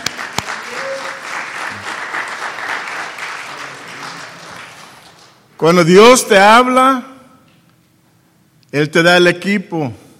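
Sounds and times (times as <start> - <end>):
audience applauding: 0.0 - 5.4
speech: 5.6 - 7.1, 8.8 - 10.0.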